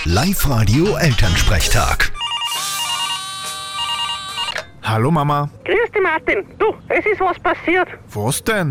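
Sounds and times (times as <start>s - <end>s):
speech: 0.0s - 2.2s, 4.9s - 8.6s
telephone ringing with an electronic trill: 0.7s - 4.8s.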